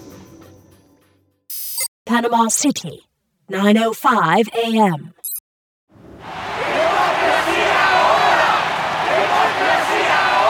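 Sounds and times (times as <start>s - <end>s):
speech: 2.1s - 5.2s
large crowd of protesters shouting in Panama City: 6.2s - 10.4s.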